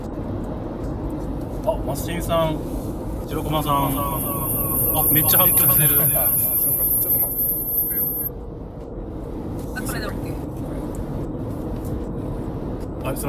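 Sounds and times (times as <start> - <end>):
road rumble inside a moving car passing through a tunnel: 0.0 - 13.2
speech: 1.6 - 4.4, 5.0 - 7.3, 13.1 - 13.2
thin high electronic whine: 3.4 - 8.3.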